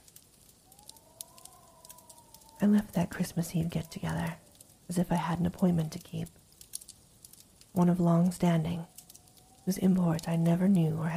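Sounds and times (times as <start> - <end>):
fireplace crackling and popping: 0.0 - 11.1
speech: 2.6 - 6.4, 7.8 - 8.9, 9.6 - 11.1.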